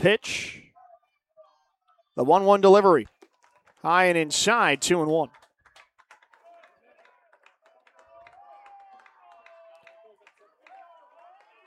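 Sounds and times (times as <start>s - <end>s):
speech: 0.0s - 0.6s, 2.2s - 3.2s, 3.8s - 5.4s
baseball fans clapping in the stands: 2.9s - 11.6s.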